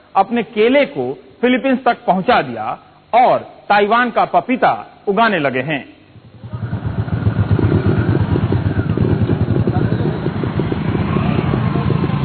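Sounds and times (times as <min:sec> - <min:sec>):
speech: 0:00.2 - 0:05.9
motorcycle engine running in a village in Gujarat India: 0:06.2 - 0:12.2.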